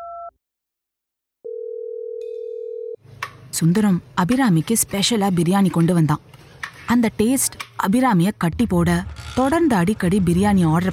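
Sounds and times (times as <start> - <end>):
telephone dial tone on an outgoing call: 1.5 - 3.0
speech: 3.6 - 10.9.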